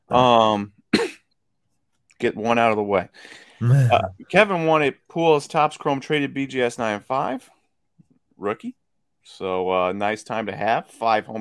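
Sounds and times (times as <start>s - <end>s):
speech: 0.1s - 0.8s, 2.2s - 7.6s, 8.4s - 11.3s
loud throaty cough: 0.9s - 1.4s.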